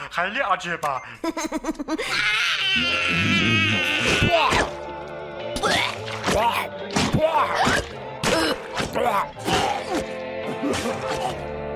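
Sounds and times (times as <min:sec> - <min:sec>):
speech: 0:00.1 - 0:04.9, 0:05.6 - 0:08.1, 0:08.9 - 0:11.6
child crying: 0:01.8 - 0:04.6.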